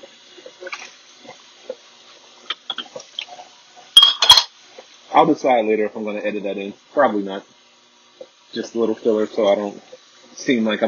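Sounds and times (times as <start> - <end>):
dishes clinking and clattering while washing in sink: 4.0 - 4.5
speech: 5.2 - 7.5, 8.5 - 10.8.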